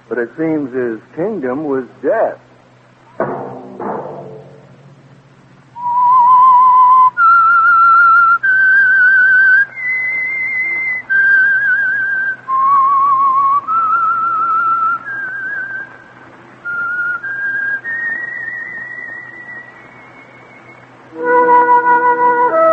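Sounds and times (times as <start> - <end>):
speech: 0.1 - 2.5
soft thuds: 3.1 - 5.6
whistled theme of a radio program: 5.8 - 16.0, 16.6 - 22.7
fuller musical chord: 21.1 - 22.7.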